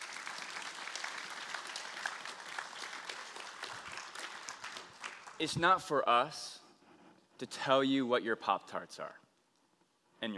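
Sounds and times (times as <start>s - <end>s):
audience applause: 0.0s - 5.5s
speech: 5.4s - 6.6s, 7.4s - 9.2s, 10.2s - 10.3s.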